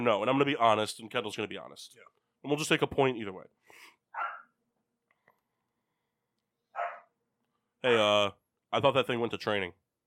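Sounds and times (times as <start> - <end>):
speech: 0.0 - 4.3, 7.8 - 9.8
dog barking: 4.1 - 4.6, 6.7 - 7.2.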